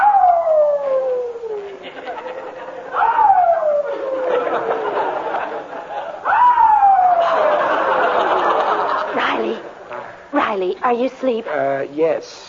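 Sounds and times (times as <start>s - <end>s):
new puppy whining and howling in its bed in a garage: 0.0s - 1.8s, 3.0s - 4.8s
laughter: 1.6s - 6.3s, 7.1s - 9.9s
speech: 10.9s - 12.4s.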